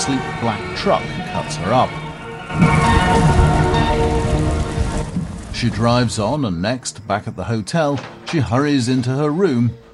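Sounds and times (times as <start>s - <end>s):
speech: 0.0s - 3.5s, 5.5s - 9.9s
heavy rain hammering down on a car: 2.5s - 5.8s.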